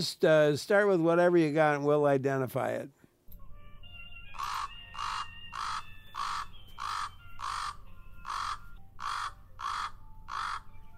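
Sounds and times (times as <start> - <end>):
speech: 0.0 - 3.0
common raven rattle call croaking: 4.4 - 10.7.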